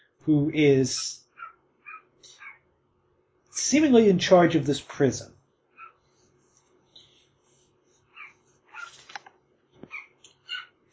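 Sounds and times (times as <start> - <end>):
speech: 0.2 - 1.2, 3.6 - 5.4
small dog yipping: 1.3 - 2.6, 5.8 - 6.0, 8.1 - 9.1, 9.9 - 10.8.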